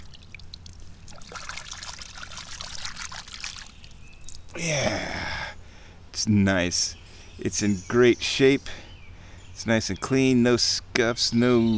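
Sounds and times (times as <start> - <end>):
water running and splashing as a golf ball is rinsed: 0.0 - 4.6
speech: 4.6 - 5.2, 6.2 - 8.8, 9.6 - 11.7.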